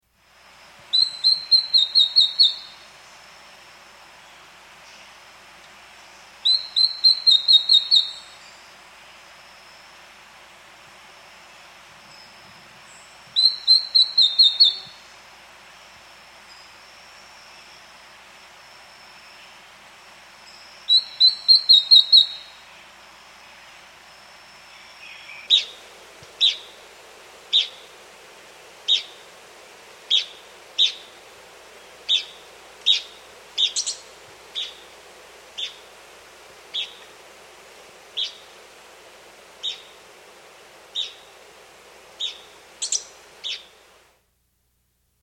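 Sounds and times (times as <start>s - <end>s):
Dull-Mantled Antbird calling: 0.9s - 3.2s, 6.4s - 8.6s, 12.9s - 15.2s, 20.9s - 23.8s, 24.6s - 28.0s, 28.7s - 29.4s, 30.0s - 37.2s, 38.0s - 38.9s, 39.5s - 40.2s, 40.8s - 41.5s, 42.1s - 43.8s.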